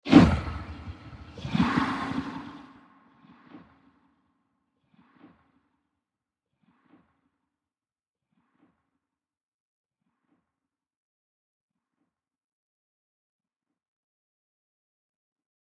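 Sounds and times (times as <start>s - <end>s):
scary monster sound in defense mode: 0.1s - 2.8s.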